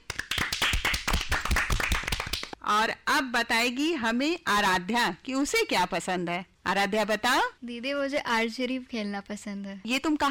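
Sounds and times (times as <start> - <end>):
audience clapping: 0.0 - 2.6
speech: 2.7 - 10.2.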